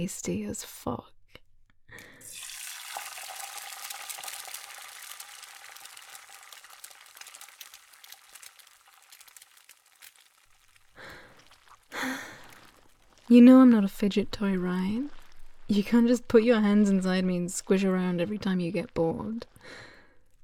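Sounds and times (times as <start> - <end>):
speech: 0.0 - 1.1, 13.3 - 19.9
food sizzling on a griddle: 2.3 - 11.0.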